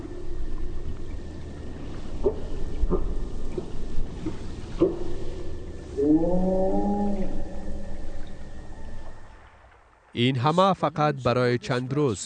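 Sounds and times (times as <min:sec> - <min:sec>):
deep underwater rumbling: 0:00.0 - 0:09.8
rising wavering whale calls while hunting fish: 0:04.7 - 0:09.4
speech: 0:10.2 - 0:12.2.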